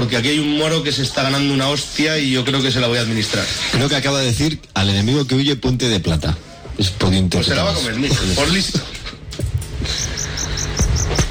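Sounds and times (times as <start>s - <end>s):
speech: 0.0s - 8.9s
crickets chirping: 9.8s - 11.2s.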